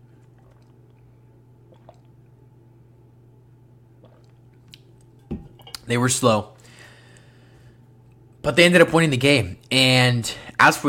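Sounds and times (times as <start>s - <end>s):
sipping water: 0.0s - 2.4s, 3.9s - 8.4s
steady low electrical hum: 0.0s - 10.8s
speech: 5.9s - 6.6s, 8.5s - 10.8s.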